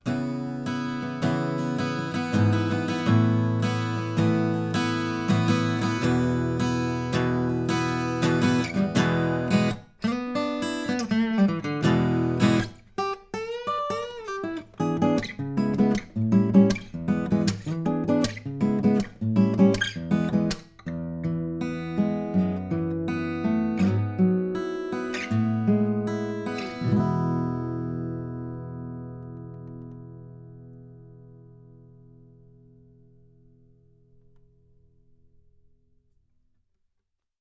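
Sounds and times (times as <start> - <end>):
acoustic guitar recorded with U87 microphone: 0.0 - 36.4.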